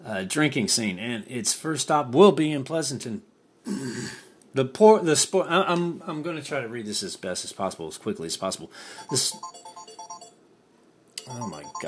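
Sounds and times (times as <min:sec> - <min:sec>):
speech: 0:00.0 - 0:09.7, 0:11.3 - 0:11.8
phone ringtone from incoming call: 0:09.0 - 0:10.4, 0:11.2 - 0:11.8.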